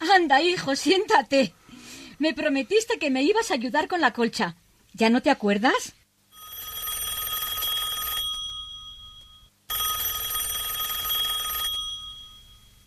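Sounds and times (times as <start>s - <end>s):
speech: 0.2s - 1.6s, 2.2s - 6.0s
mobile phone ringing with electronic trill: 6.3s - 12.8s.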